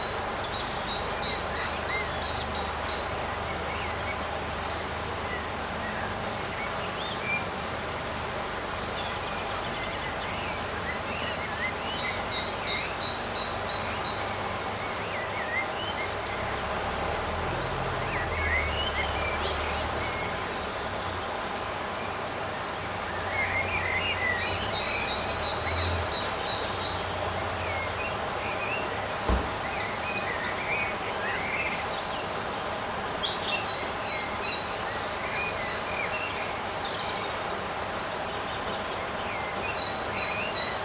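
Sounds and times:
birds singing in a summer garden: 0.0s - 40.8s
steady outdoor hum: 0.0s - 40.8s
brief knock: 29.2s - 29.6s.

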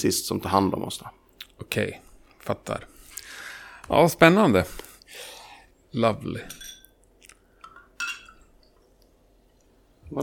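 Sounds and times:
speech: 0.0s - 2.9s, 3.9s - 5.3s, 5.9s - 6.7s
glasses of water clinking as served: 6.5s - 7.0s, 7.6s - 8.5s.

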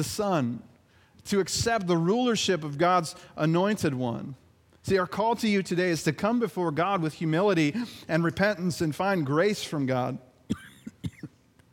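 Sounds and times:
speech: 0.0s - 10.6s
coughs: 10.5s - 11.4s.

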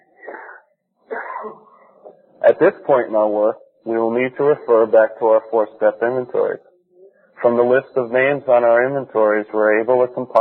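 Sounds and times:
person sneezing: 0.2s - 1.9s
speech: 2.5s - 6.7s, 7.4s - 10.4s.

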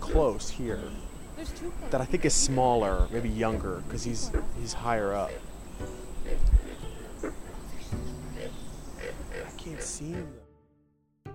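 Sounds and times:
speech: 0.1s - 6.6s, 9.6s - 10.4s
pig frog grunting call: 1.7s - 10.3s.

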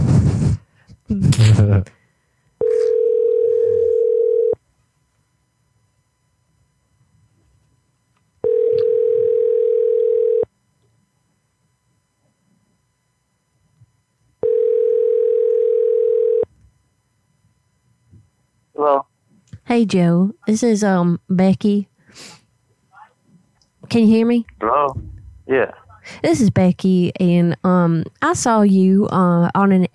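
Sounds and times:
speech: 1.1s - 2.0s, 19.7s - 22.4s, 23.9s - 29.9s
telephone dial tone while placing a prank call: 2.6s - 4.6s, 8.4s - 10.5s, 14.4s - 16.5s.

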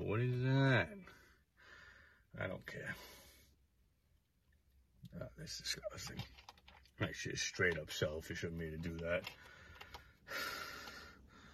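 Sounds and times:
speech: 0.0s - 1.2s, 2.3s - 3.2s, 5.1s - 9.5s, 10.3s - 10.6s
heavy rasping breathing: 1.1s - 2.3s, 9.2s - 11.5s.

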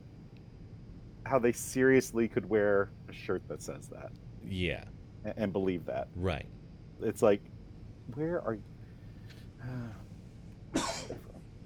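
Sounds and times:
speech: 1.3s - 7.5s, 8.1s - 8.7s, 9.6s - 10.0s
single sharp cough with trailing rasp: 10.7s - 11.4s.

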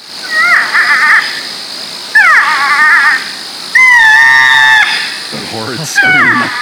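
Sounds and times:
porcupine screaming: 0.2s - 1.5s, 2.1s - 6.6s
speech: 5.9s - 6.6s.

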